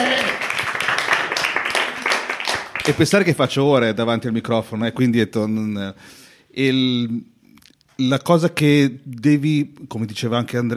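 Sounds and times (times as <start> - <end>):
crowd applauding: 0.0 - 3.2
speech: 2.9 - 7.3, 8.0 - 10.7.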